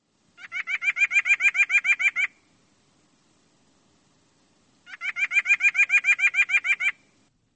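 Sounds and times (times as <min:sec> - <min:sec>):
white-breasted nuthatch nasal yank call: 0:00.4 - 0:02.5, 0:04.8 - 0:07.1.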